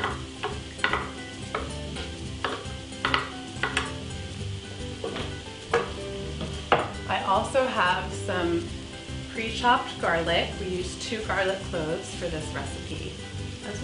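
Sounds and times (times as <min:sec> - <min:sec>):
shallots sizzling in a hot pan: 0:00.0 - 0:13.8
speech: 0:07.4 - 0:08.8, 0:09.4 - 0:13.8.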